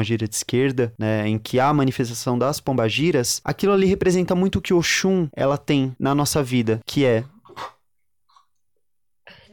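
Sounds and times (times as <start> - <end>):
speech: 0.0 - 7.8
person sneezing: 7.5 - 7.8.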